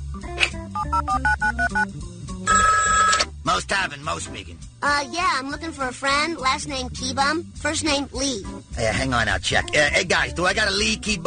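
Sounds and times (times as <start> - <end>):
speech: 0.2 - 2.7, 3.6 - 11.2
touch-tone dialing beeps of a prank phone call: 0.8 - 1.9, 2.5 - 3.2
telephone line ringing: 2.5 - 3.3.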